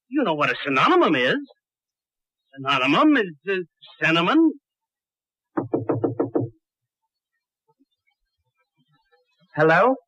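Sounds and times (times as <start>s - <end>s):
speech: 0.2s - 1.6s, 2.6s - 4.6s, 9.6s - 10.0s
hollow resonant knocking: 5.6s - 6.6s.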